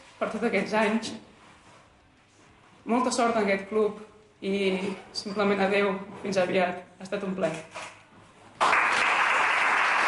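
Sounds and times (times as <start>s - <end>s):
speech: 0.2s - 1.3s, 2.9s - 7.9s
applause of many hands after an emotional farewell at a press conference: 8.6s - 10.0s.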